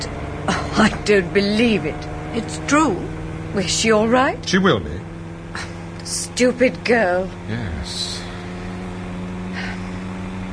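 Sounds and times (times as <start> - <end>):
car engine droning while driving on the road: 0.0 - 10.5
speech: 0.5 - 8.1.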